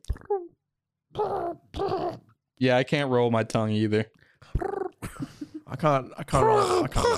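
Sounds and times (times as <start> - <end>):
speech: 0.3 - 2.0, 2.6 - 4.7, 5.7 - 7.1
person imitating pigeon cooing: 1.2 - 2.2, 4.6 - 5.0.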